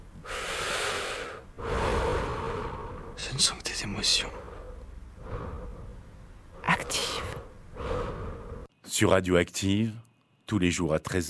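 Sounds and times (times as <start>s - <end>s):
person breathing in and out: 0.2s - 8.7s
speech: 3.3s - 4.4s, 9.0s - 11.2s.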